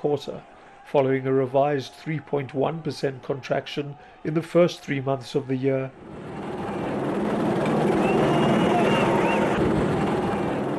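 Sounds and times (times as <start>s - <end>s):
speech: 0.0s - 6.3s
police helicopter hovering over a city: 5.9s - 10.7s.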